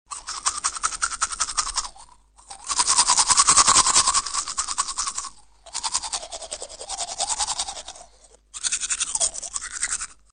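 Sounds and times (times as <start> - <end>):
teeth brushing: 0.1 - 10.3.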